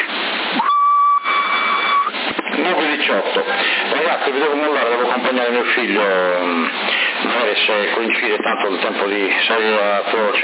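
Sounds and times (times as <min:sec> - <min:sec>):
loud constant CB radio hiss: 0:00.0 - 0:10.4
person whistling over a CB radio link on 27 MHz: 0:00.6 - 0:02.1
speech: 0:07.7 - 0:10.4.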